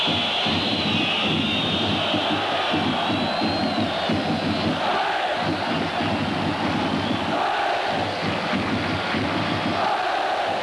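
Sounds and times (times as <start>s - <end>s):
drums: 0.0s - 10.6s.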